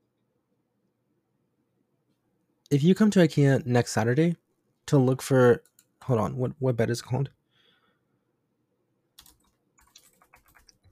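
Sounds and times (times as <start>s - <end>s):
speech: 2.7s - 7.4s
computer keyboard typing: 5.6s - 5.9s, 9.2s - 10.9s.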